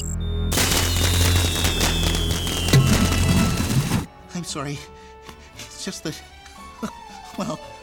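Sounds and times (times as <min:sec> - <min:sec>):
fireworks and road flares crackling: 0:00.5 - 0:04.1
speech: 0:04.5 - 0:05.0, 0:05.8 - 0:07.7.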